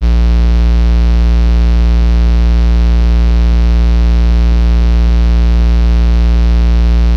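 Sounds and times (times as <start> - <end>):
buzzing synth notes: 0.0 - 7.1.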